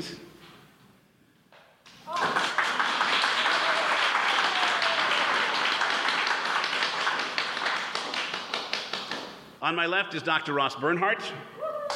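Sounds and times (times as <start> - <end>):
speech: 0.0 - 0.2, 9.7 - 11.5
live studio audience applauding: 2.1 - 9.4.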